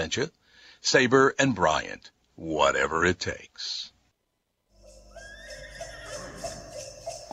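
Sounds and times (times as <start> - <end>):
speech: 0.0 - 3.9
horse whinnying: 4.8 - 7.3.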